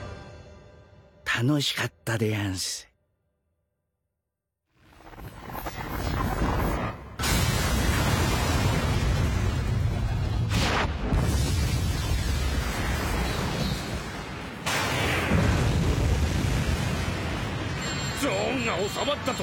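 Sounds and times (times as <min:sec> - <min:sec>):
speech: 0:01.5 - 0:02.9, 0:19.1 - 0:19.4
crackling debris: 0:04.9 - 0:19.4
deep rumbling underground explosion destroying a power reactor: 0:07.2 - 0:17.8.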